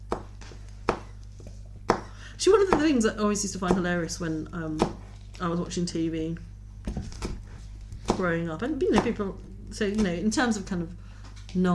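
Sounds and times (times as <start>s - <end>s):
knife chopping a chili on a cutting board: 0.0s - 1.2s, 1.9s - 3.0s, 3.6s - 4.0s, 4.7s - 5.1s, 6.9s - 10.3s
speech: 2.4s - 7.1s, 8.2s - 11.7s.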